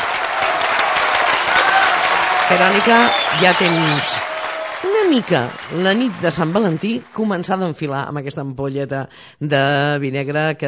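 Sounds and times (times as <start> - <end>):
crowd applause: 0.0 - 7.4
speech: 2.5 - 4.2, 4.8 - 10.6.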